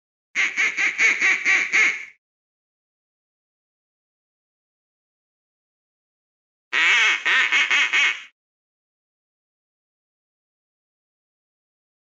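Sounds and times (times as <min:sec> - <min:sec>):
duck quacking: 0:00.4 - 0:02.2, 0:06.8 - 0:08.3.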